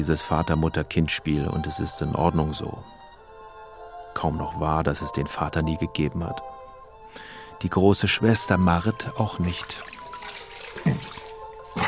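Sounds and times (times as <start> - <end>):
speech: 0.0 - 3.0, 4.2 - 10.0, 10.8 - 11.1
running cold water hiss during a morning wash: 9.3 - 11.8.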